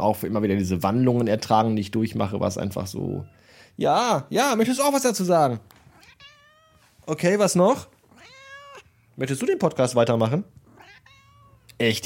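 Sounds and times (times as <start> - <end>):
speech: 0.0 - 5.8, 7.1 - 8.0, 9.2 - 11.1, 11.8 - 12.0
cat meowing: 0.8 - 1.5, 5.8 - 7.0, 8.0 - 9.1, 10.6 - 11.8.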